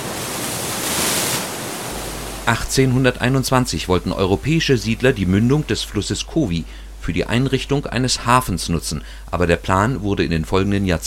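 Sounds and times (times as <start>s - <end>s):
Indian Ocean surf breaking on a beach: 0.0s - 7.1s
speech: 2.5s - 11.0s.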